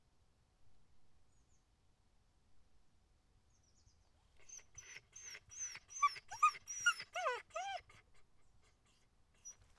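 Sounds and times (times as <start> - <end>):
dog yelping: 4.5 - 8.1.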